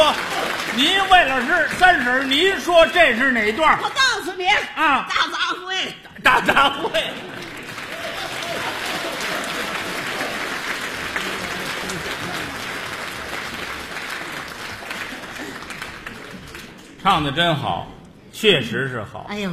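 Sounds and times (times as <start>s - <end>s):
audience applause following an elderly woman's singing: 0.0s - 4.3s, 6.5s - 17.0s
speech: 0.8s - 7.4s, 17.0s - 19.5s
laughter: 4.1s - 13.2s.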